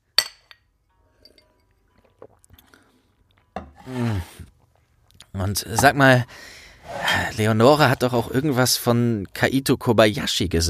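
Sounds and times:
glasses clinking together in a toast: 0:00.2 - 0:01.8
speech: 0:03.9 - 0:04.5, 0:05.4 - 0:10.6.

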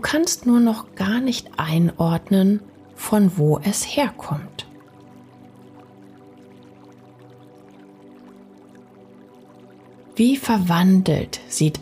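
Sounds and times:
speech: 0:00.0 - 0:04.6, 0:10.2 - 0:11.8
distant fountain water trickling and splashing: 0:00.0 - 0:11.8
low steady hum: 0:00.0 - 0:11.8.

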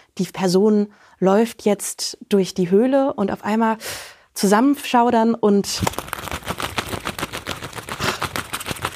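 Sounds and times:
speech: 0:00.2 - 0:06.1
four tied gloves flapped to imitate bat wings: 0:05.8 - 0:08.9.

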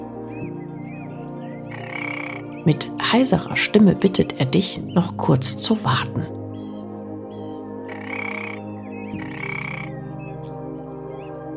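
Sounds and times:
rasping frog croaks: 0:01.5 - 0:03.1, 0:07.4 - 0:10.4
speech: 0:02.6 - 0:06.4.

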